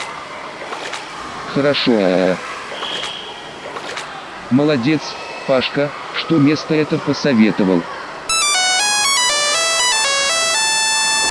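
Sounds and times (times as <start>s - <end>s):
speech: 1.5s - 2.5s, 4.5s - 8.0s
Nokia mobile phone ringtone: 8.3s - 11.3s.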